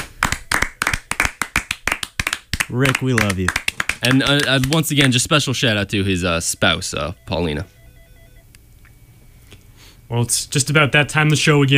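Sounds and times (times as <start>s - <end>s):
round of hand clapping applause: 0.0s - 5.2s
speech: 2.7s - 7.8s, 10.1s - 11.7s.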